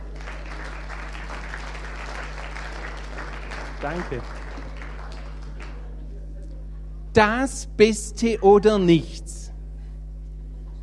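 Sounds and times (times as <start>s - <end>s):
sizable audience clapping: 0.0s - 6.1s
speech: 3.8s - 4.4s, 7.2s - 9.4s.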